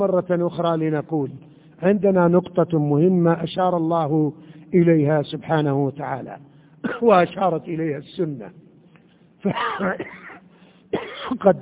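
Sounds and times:
speech: 0.0 - 8.6, 9.4 - 10.2, 10.9 - 11.6
person coughing or clearing throat: 6.8 - 7.2, 9.4 - 11.5.

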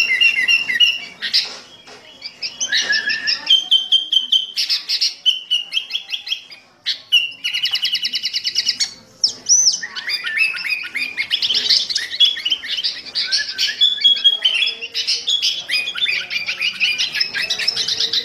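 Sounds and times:
Sooty-headed bulbul singing a lively varied fierce-style song: 0.0 - 18.2.

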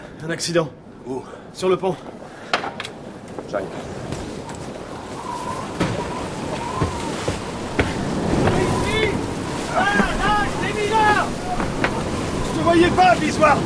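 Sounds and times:
wind sweeping across a fishing ship's deck: 0.0 - 13.6
speech: 0.2 - 2.4, 3.5 - 4.2, 12.6 - 13.6
heavy sea sweeping across a fishing ship's deck: 1.6 - 13.6
rising-and-falling whining tones: 4.3 - 12.5
sharp knocks: 5.8 - 8.8.

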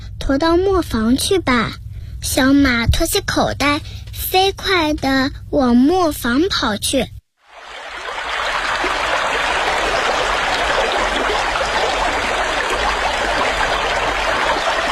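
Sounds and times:
speech: 0.3 - 7.2
river water rushing and flowing: 7.5 - 14.8.

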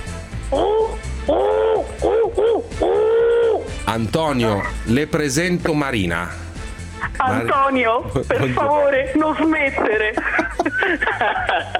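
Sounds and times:
human voice imitating an owl's hoot: 0.5 - 3.7
speech: 1.3 - 1.5, 3.9 - 6.4, 7.2 - 11.7
laughter: 8.0 - 8.9, 9.8 - 11.7.

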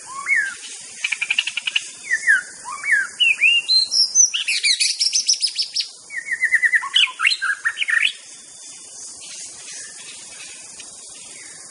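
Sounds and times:
wild White-rumped shama singing in forest: 0.0 - 8.3
faint background hiss: 0.0 - 11.6.

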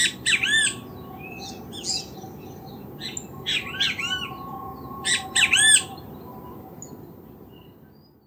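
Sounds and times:
great kiskadee calls in Casavalle, Montevideo, Uruguay: 0.0 - 7.8.

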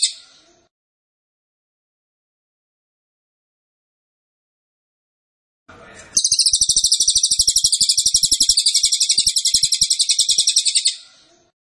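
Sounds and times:
bird song of long high pulsing trill: 0.0 - 0.4, 6.2 - 11.2.

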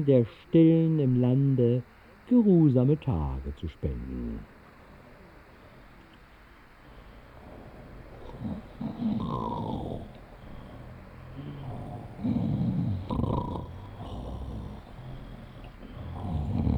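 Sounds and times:
speech: 0.0 - 4.5, 8.4 - 10.1
rasping snoring of a sleeper on a February night: 6.9 - 16.7.

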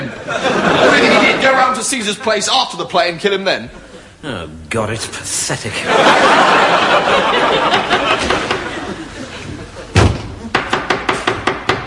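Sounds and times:
laughter: 0.0 - 2.5, 5.7 - 10.5
speech: 0.3 - 0.7, 1.8 - 8.4
knocking at a door: 10.0 - 11.8.

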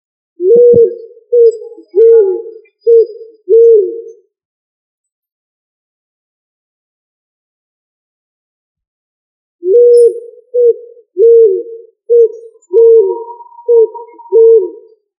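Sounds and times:
pigeon cooing: 0.4 - 4.2, 9.6 - 15.0.

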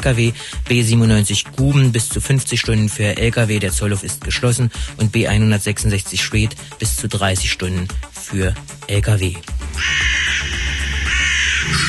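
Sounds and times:
speech: 0.0 - 10.4, 11.7 - 11.8
crows cawing: 9.7 - 11.8.

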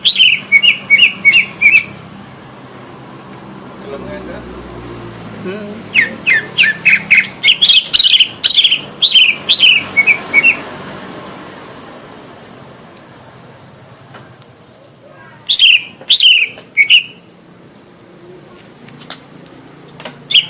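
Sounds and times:
Greater green leafbird song: 0.0 - 2.6, 5.9 - 10.7, 15.3 - 17.4, 20.2 - 20.4.

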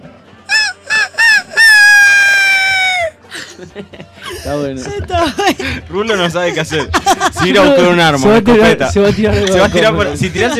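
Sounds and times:
person imitating a rooster crowing: 0.5 - 3.2
laughter: 0.5 - 8.2, 8.8 - 10.5
speech: 3.6 - 10.5.

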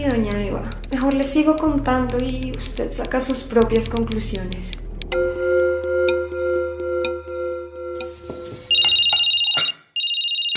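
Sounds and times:
speech: 0.0 - 5.2
mobile phone ringing with an incoming call: 5.2 - 10.5.

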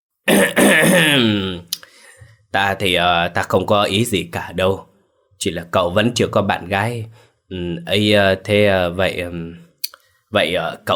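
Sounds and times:
man clearing his throat: 0.3 - 1.6
speech: 2.5 - 9.6, 10.3 - 10.9.

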